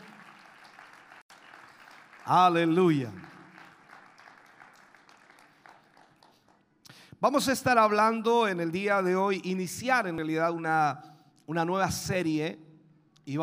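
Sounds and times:
large crowd applauding in praise after a prayer: 0.0s - 6.7s
speech: 2.3s - 3.3s, 7.2s - 12.6s, 13.3s - 13.4s.

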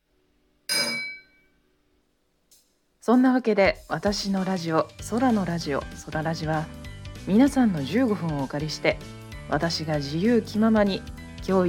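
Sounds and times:
glasses clinking in a toast: 0.7s - 1.4s
speech: 3.1s - 11.6s.

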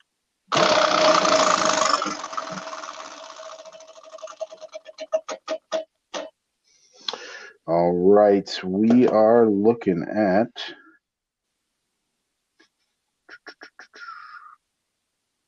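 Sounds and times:
prize wheel spinning and clicking: 0.6s - 5.7s
speech: 8.2s - 10.8s.

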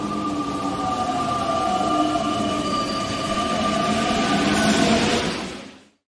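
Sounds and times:
loud train rumbling along rails: 0.0s - 6.0s
high metallic train wheel squeal: 1.3s - 5.1s.

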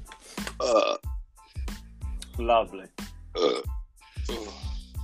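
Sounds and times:
person burping: 0.5s - 1.1s, 3.4s - 4.9s
speech: 2.4s - 3.7s.

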